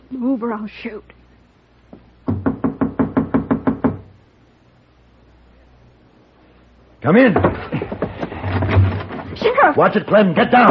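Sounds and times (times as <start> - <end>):
speech: 0.1 - 1.2, 7.0 - 8.0, 9.5 - 10.6
firm knocks on a wooden door: 1.9 - 4.1, 7.4 - 8.8.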